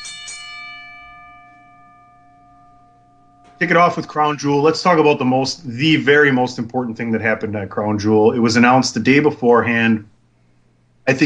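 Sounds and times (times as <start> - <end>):
bell ringing: 0.0 - 4.5
speech: 3.6 - 10.1, 11.1 - 11.2.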